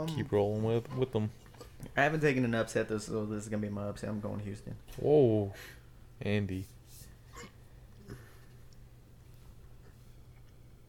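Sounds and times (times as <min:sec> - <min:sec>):
speech: 0:00.0 - 0:06.8
hiccups: 0:07.3 - 0:07.6.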